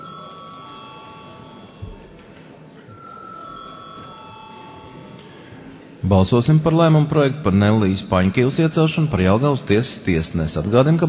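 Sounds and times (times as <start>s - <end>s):
parliamentary voting call bell ringing before a secret ballot: 0.0s - 5.6s
low murmur of room noise: 0.0s - 11.0s
speech: 6.1s - 11.0s.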